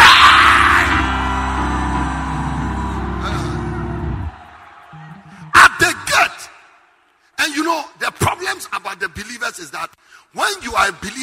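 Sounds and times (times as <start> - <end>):
congregation shouting and screaming together: 0.0 - 7.1
steady sustained musical drone: 0.1 - 4.5
speech: 9.6 - 11.2.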